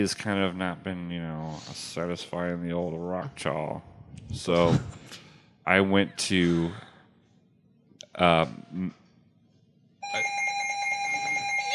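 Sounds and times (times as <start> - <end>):
speech: 0.0 - 6.9, 8.2 - 9.0
telephone ringing for incoming caller to a live radio show: 10.0 - 11.7.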